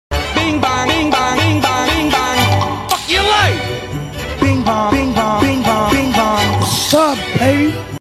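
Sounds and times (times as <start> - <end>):
ringtone melody: 0.7 - 7.9.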